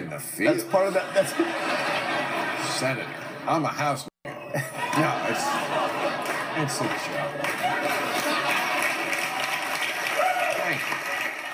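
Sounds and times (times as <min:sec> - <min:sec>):
speech: 0:00.2 - 0:08.5
laughter: 0:00.4 - 0:09.8
crowd clapping hesitantly: 0:04.8 - 0:11.5.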